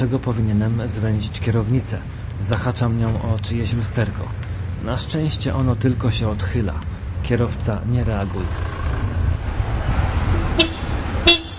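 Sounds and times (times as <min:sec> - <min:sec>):
speech: 0:00.0 - 0:08.8, 0:10.6 - 0:10.8
idling car engines in a city street traffic jam: 0:00.0 - 0:11.5
car horn toots: 0:10.5 - 0:11.5.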